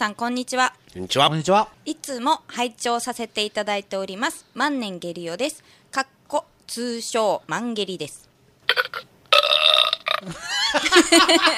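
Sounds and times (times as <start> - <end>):
speech: 0.0 - 9.1, 9.7 - 11.5
person burping: 8.7 - 10.4
laughter: 10.2 - 11.5.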